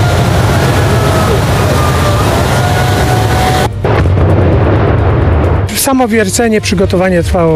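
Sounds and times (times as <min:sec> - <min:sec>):
50 kg dynamite blast demolishing concrete mine shaft tower: 0:00.0 - 0:06.0
rumble of reinforced-concrete mine shaft tower collapsing: 0:00.0 - 0:06.5
speech: 0:05.9 - 0:07.5.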